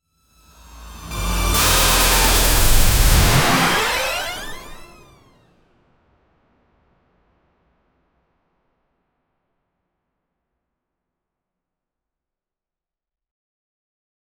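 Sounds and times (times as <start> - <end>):
fast digital swoosh with glitch: 1.1 - 5.3.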